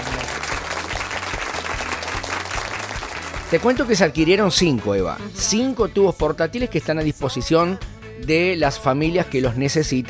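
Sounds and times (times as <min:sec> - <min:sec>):
crowd applauding: 0:00.0 - 0:04.2
speech: 0:03.5 - 0:10.0.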